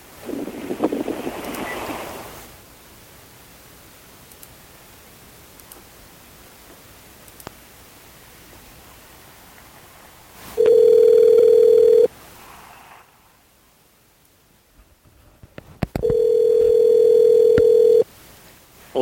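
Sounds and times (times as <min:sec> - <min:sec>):
faint telephone line clicks: 0:04.3 - 0:04.6, 0:05.6 - 0:05.9, 0:07.2 - 0:07.6
long steady electronic telephone tone beeps while placing a call: 0:10.6 - 0:12.1, 0:16.0 - 0:18.1.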